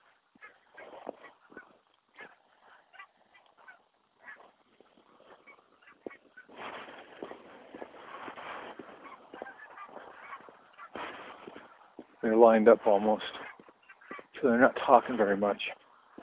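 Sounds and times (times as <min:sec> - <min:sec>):
skein of geese honking overhead on a snowy day: 0:00.0 - 0:16.2
speech: 0:12.3 - 0:13.4, 0:14.4 - 0:15.8.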